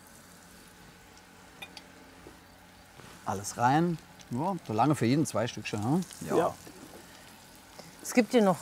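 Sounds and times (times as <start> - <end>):
liver sizzling in a frying pan: 0.0 - 8.6
small crackling pops of frying liver: 1.0 - 1.4, 2.2 - 8.1
speech: 3.3 - 6.7, 8.1 - 8.6.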